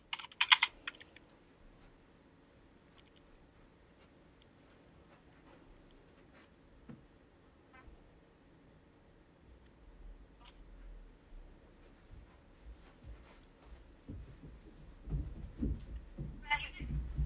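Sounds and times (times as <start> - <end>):
typing on a computer keyboard: 0.0 - 1.2
faint room hum: 0.0 - 17.2.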